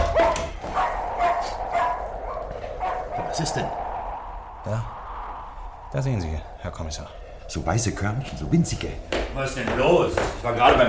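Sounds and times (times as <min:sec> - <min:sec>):
dog with short high-pitched yappy barks: 0:00.0 - 0:03.4
speech: 0:03.4 - 0:03.8, 0:04.6 - 0:05.0, 0:05.9 - 0:10.8.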